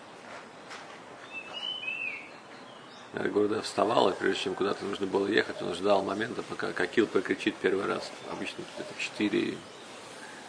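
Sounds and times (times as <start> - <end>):
birds singing outdoors: 0.0 - 10.4
steady hiss of ambient noise: 0.0 - 10.4
speech: 3.1 - 9.8.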